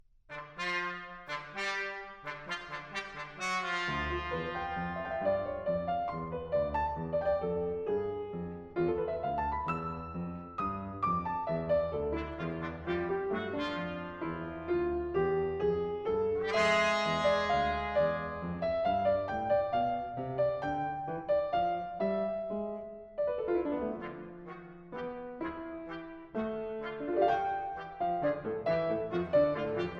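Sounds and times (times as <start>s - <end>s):
trumpet: 0.3s - 6.0s, 11.2s - 14.8s, 16.2s - 20.2s, 23.7s - 29.9s
trombone: 0.3s - 7.4s, 11.1s - 14.9s, 16.2s - 20.2s, 23.6s - 29.9s
piano: 0.3s - 29.9s.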